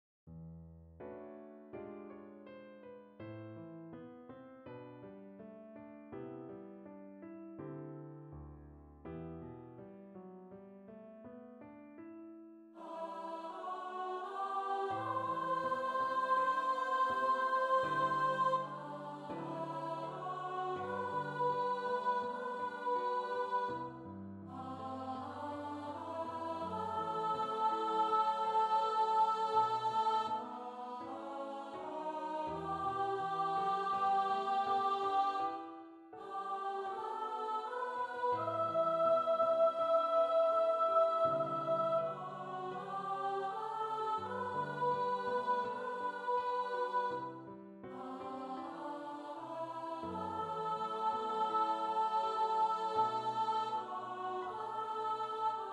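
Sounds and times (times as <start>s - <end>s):
soprano voices singing: 12.8s - 55.7s.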